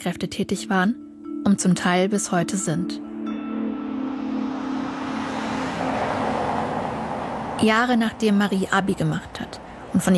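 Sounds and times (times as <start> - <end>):
speech: 0.0 - 3.1, 7.6 - 10.1
road noise: 2.2 - 10.1
car engine humming on a street: 2.9 - 10.1.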